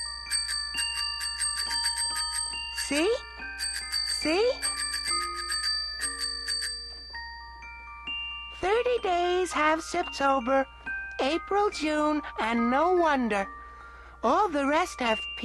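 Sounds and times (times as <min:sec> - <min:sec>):
small tricycle handlebar bell ringing: 0:00.0 - 0:07.2
speech: 0:02.9 - 0:03.3, 0:04.2 - 0:04.7, 0:09.0 - 0:13.6, 0:14.2 - 0:15.4.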